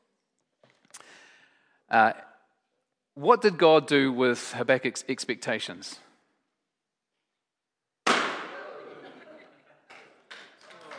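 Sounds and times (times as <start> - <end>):
speech: 1.9 - 2.3, 3.2 - 6.1
balloons being popped with a pin: 8.0 - 8.6
laughter: 8.4 - 10.9.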